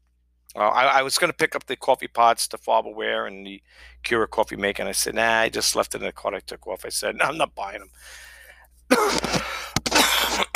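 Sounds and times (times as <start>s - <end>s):
speech: 0.5s - 8.3s
person with a lingering cough coughing and clearing their throat: 8.9s - 10.5s.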